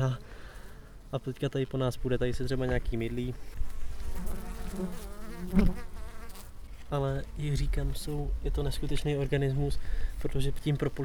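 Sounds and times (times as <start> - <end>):
speech: 0.0 - 0.3, 1.1 - 3.7, 4.8 - 5.9, 6.9 - 11.0
honeybee buzzing: 3.6 - 6.6.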